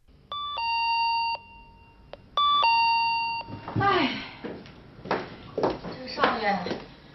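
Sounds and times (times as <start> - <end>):
doorbell ringing with two-tone ding-dong chime: 0.3 - 3.6
speech: 6.4 - 6.8.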